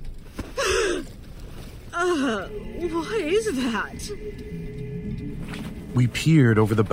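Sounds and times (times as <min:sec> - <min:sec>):
woman's sharp voiced gasp: 0:00.5 - 0:01.2, 0:02.0 - 0:02.8
speech: 0:02.0 - 0:04.8, 0:06.0 - 0:06.9.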